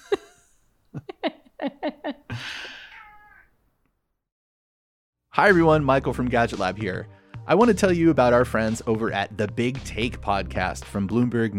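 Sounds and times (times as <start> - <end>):
cat giving chirping and drawn-out meows: 2.8 - 3.5
speech: 5.4 - 11.5.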